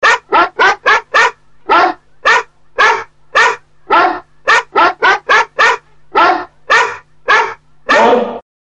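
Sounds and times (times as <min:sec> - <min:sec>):
chorus of dogs howling together: 0:00.1 - 0:08.4.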